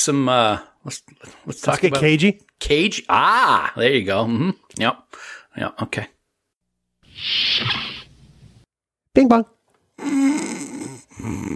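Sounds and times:
speech: 0:00.0 - 0:06.2, 0:07.2 - 0:08.0, 0:09.2 - 0:10.6, 0:11.2 - 0:11.5
person imitating the snoring of sleeping dogs: 0:10.0 - 0:11.5.

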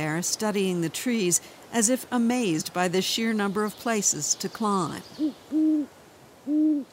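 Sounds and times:
speech: 0:00.2 - 0:06.9
owl hooting: 0:05.2 - 0:05.9, 0:06.5 - 0:06.9.

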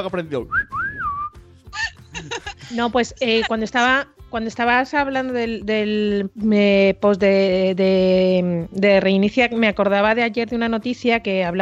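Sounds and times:
speech: 0:00.0 - 0:00.6, 0:02.2 - 0:11.6
person whistling a short wavering melodic phrase: 0:00.5 - 0:01.4
laughter and giggling: 0:01.8 - 0:03.7.

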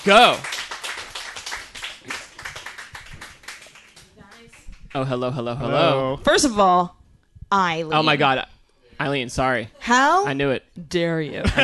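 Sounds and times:
speech: 0:00.0 - 0:00.5, 0:05.0 - 0:11.6
audience applause: 0:00.0 - 0:05.1.

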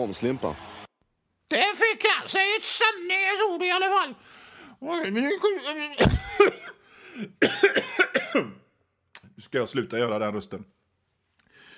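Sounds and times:
speech: 0:00.0 - 0:00.8, 0:01.5 - 0:08.6, 0:09.4 - 0:10.8
loud coughing fit: 0:06.0 - 0:08.6.

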